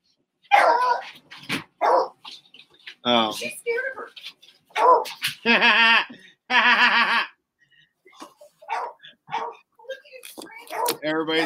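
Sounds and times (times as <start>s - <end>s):
dog barking: 0.5s - 1.2s, 1.8s - 2.2s, 4.7s - 5.2s, 8.6s - 9.7s, 10.6s - 11.4s
speech: 3.1s - 4.2s, 5.0s - 6.1s, 11.1s - 11.4s.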